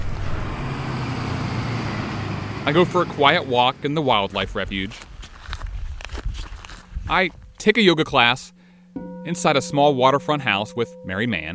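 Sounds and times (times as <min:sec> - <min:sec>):
large vehicle engine rumbling: 0:00.0 - 0:05.1
speech: 0:02.6 - 0:05.1, 0:07.1 - 0:11.5.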